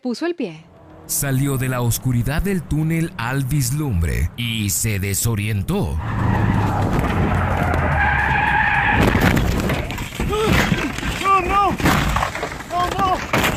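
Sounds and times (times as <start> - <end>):
speech: 0.0 - 7.7
car tire screech skidding on a curve in the San Gabriel Mountains: 0.7 - 4.5, 5.7 - 12.6
rough clatter of a car falling off a cliff: 6.6 - 13.5.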